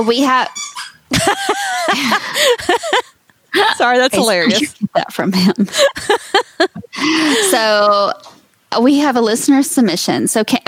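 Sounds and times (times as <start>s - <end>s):
dog whining yips and yelps: 0.0s - 1.1s
speech: 0.0s - 3.0s, 3.6s - 10.6s
laughter: 1.1s - 7.8s.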